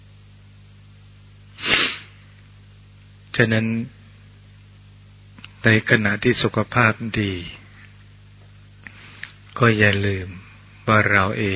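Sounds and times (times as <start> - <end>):
faint steady hum: 0.0 - 11.5
person sneezing: 1.6 - 2.2
speech: 3.4 - 4.0, 5.6 - 7.6, 9.6 - 11.5.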